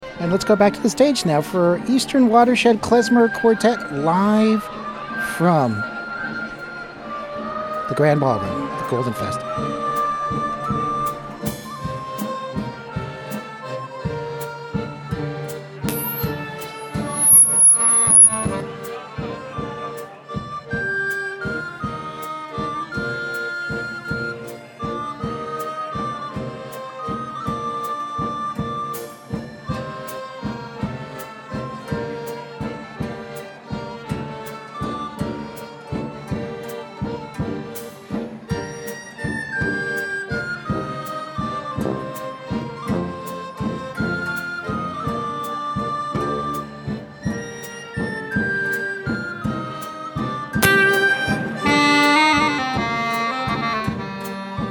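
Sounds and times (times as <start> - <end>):
klezmer quartet playing live: 0.0 - 54.6.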